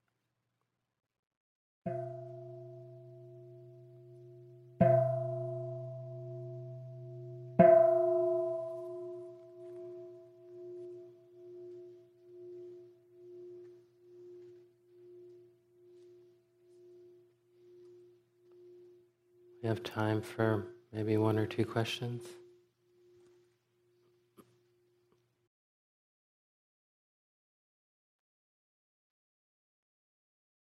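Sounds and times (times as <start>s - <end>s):
meditation bell struck and ringing with a pulsing shimmer: 1.9s - 24.0s
speech: 19.7s - 22.4s.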